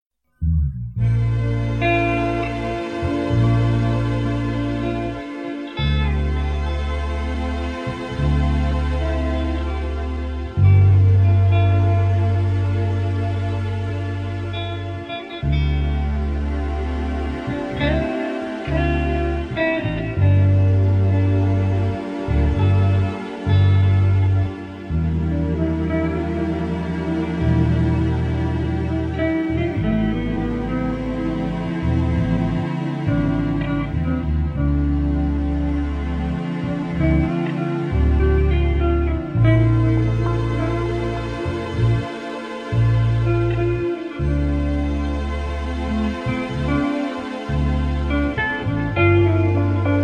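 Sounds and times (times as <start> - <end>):
432 Hz chill guitar music: 0.3 - 50.0.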